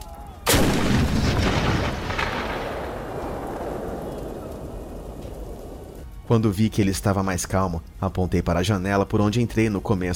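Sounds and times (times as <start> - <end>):
heavy cannon firing: 0.5 - 5.8
speech: 6.3 - 10.1.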